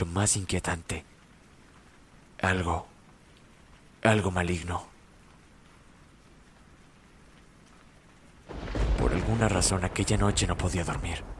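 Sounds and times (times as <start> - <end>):
speech: 0.0 - 1.1, 2.4 - 2.9, 4.0 - 4.9, 9.3 - 11.3
loud rushing rain in a night storm: 0.0 - 11.3
deep thunder rumble in a night storm: 8.5 - 11.3.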